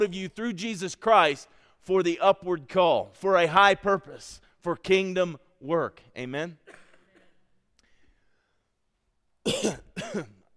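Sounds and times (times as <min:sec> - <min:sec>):
speech: 0:00.0 - 0:06.8, 0:09.4 - 0:10.4
coughing with raspy throat-clearing: 0:06.6 - 0:07.6, 0:09.4 - 0:10.5.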